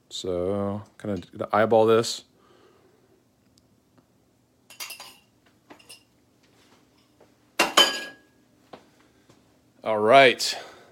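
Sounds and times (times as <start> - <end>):
speech: 0.1 - 2.3, 9.8 - 10.7
metal utensils clinking and scraping against a dish while dividing egg mixture: 4.7 - 6.1.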